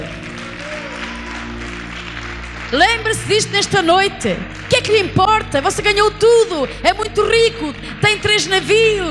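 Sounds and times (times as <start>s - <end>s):
audience applause: 0.0s - 5.5s
sustained low musical drone: 0.0s - 9.0s
speech: 2.7s - 9.0s.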